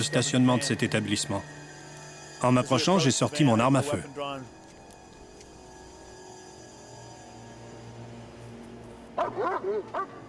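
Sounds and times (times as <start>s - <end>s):
speech: 0.0s - 1.7s, 2.4s - 4.6s, 9.6s - 10.2s
faint hiss: 0.0s - 9.2s
police dog barking short yappy barks: 9.2s - 10.2s.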